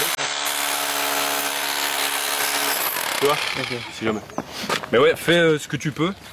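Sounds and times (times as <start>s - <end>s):
hammer drill running: 0.0s - 4.0s
speech: 3.2s - 6.3s.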